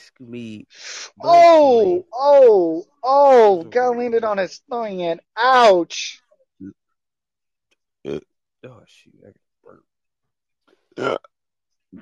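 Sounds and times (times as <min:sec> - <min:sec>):
speech: 0:00.1 - 0:06.8, 0:08.0 - 0:09.9, 0:11.0 - 0:11.3
loud burp: 0:08.1 - 0:08.3, 0:11.0 - 0:11.3.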